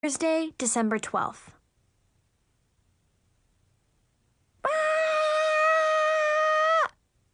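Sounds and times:
speech: 0:00.0 - 0:01.6
person screaming: 0:04.6 - 0:07.0.

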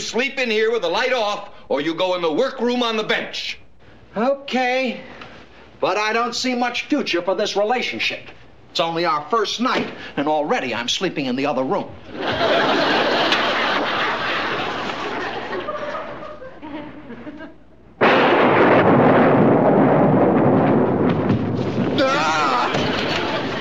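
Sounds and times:
speech: 0:00.1 - 0:03.6, 0:04.2 - 0:05.2, 0:05.8 - 0:13.4
laughter: 0:12.1 - 0:17.8, 0:22.1 - 0:23.5
loud thunder crash in a lightning storm: 0:18.0 - 0:23.5.

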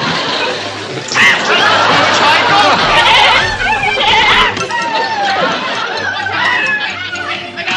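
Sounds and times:
people laughing: 0:00.0 - 0:07.7
people chattering: 0:00.3 - 0:07.7
goat bleating: 0:02.5 - 0:04.6.

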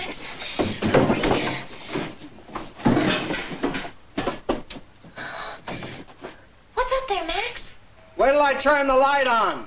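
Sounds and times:
closet door rattling and bumping as it settles: 0:00.6 - 0:01.7, 0:02.8 - 0:04.8
speech: 0:08.5 - 0:09.6.

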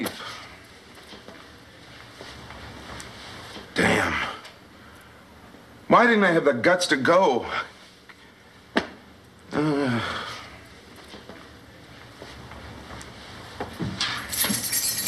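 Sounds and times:
speech: 0:05.9 - 0:07.7, 0:09.6 - 0:10.2
ring of keys jangling: 0:14.0 - 0:15.0.

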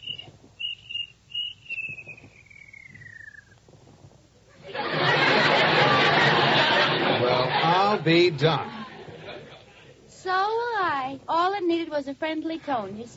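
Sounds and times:
cricket chirping: 0:00.0 - 0:03.6
loud rush of broadband noise: 0:00.0 - 0:13.1
laughter: 0:04.5 - 0:10.0
speech: 0:08.0 - 0:08.8, 0:11.4 - 0:13.1.

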